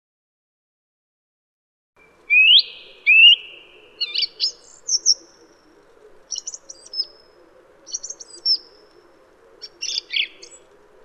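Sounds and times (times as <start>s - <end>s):
faint low hum: 2.0s - 11.0s
song thrush singing: 2.0s - 11.0s.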